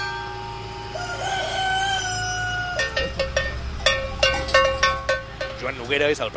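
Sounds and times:
low rural hum: 0:00.0 - 0:06.3
rooster crowing in a rural area: 0:00.3 - 0:03.8
metallic cowbells clanking: 0:02.8 - 0:06.3
speech: 0:05.7 - 0:06.3.

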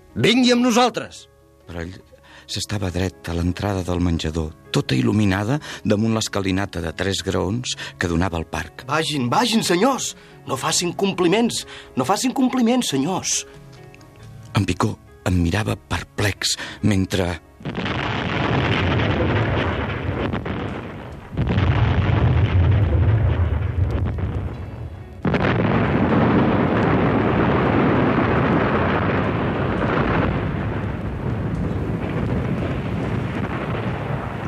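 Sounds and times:
speech: 0:00.2 - 0:13.7, 0:14.5 - 0:18.1
artillery volley explosions on the other side of a spa resort: 0:17.6 - 0:34.4.

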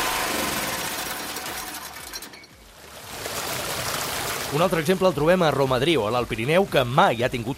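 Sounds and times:
small generator engine running: 0:00.0 - 0:02.5
speech: 0:04.5 - 0:07.5.

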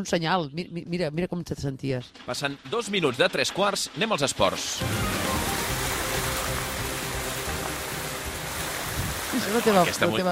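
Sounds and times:
speech: 0:00.0 - 0:05.4, 0:09.5 - 0:10.3
heavy rushing water: 0:04.2 - 0:10.3.

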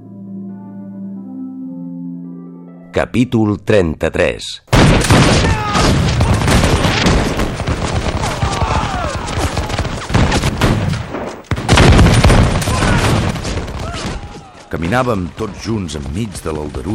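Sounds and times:
speech: 0:02.9 - 0:05.6, 0:14.7 - 0:16.9
gunfire during a general assault: 0:04.7 - 0:14.4
explosions during a bombardment: 0:04.7 - 0:16.9.

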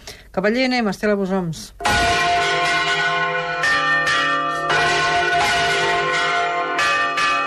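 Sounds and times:
speech: 0:00.4 - 0:02.1
church bells pealing for a midday toll in Os de Balaguer: 0:01.8 - 0:07.4.

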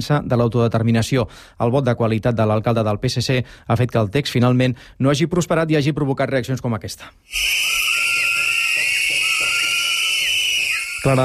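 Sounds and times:
speech: 0:00.0 - 0:08.0, 0:11.0 - 0:11.2
crowd of about a hundred residents whistling in protest in front of the town hall: 0:07.3 - 0:11.2.

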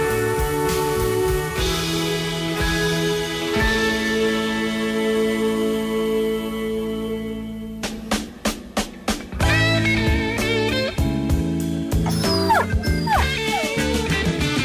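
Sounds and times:
steady musical backdrop: 0:00.0 - 0:14.6
dog whimpering and whining: 0:12.0 - 0:14.3
dog barking: 0:12.1 - 0:14.1.

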